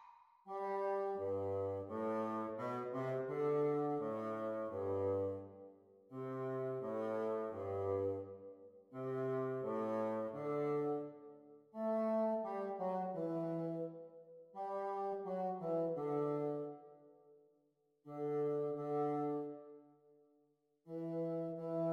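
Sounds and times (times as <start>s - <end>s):
bassoon duet: 0.5s - 5.6s, 6.1s - 8.3s, 9.0s - 11.2s, 11.8s - 16.8s, 18.1s - 19.6s, 20.9s - 21.9s.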